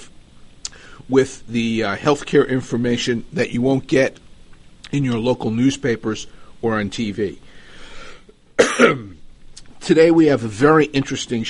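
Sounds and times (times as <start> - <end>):
soft breathy lead-in: 0.7 - 1.1, 6.3 - 6.6, 7.4 - 8.3
speech: 1.1 - 4.2, 4.9 - 7.5, 8.8 - 9.1, 9.9 - 11.4.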